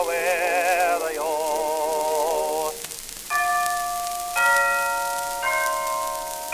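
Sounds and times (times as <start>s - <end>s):
song: 0.0s - 6.5s
clock chime ringing the hour within a song: 3.3s - 6.5s.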